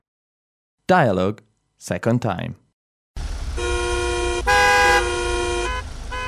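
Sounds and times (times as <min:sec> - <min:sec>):
speech: 0:00.9 - 0:02.6
car horns honking in a traffic jam of holiday return traffic: 0:03.5 - 0:06.2.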